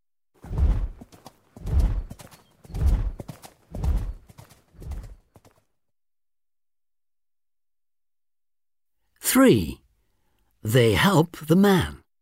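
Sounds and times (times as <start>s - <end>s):
horse hooves clip-clopping: 0.5s - 5.7s
speech: 9.4s - 9.8s, 10.6s - 12.0s.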